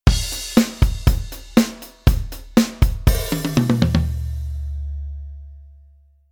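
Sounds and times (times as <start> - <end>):
drum kit: 0.0 - 5.3.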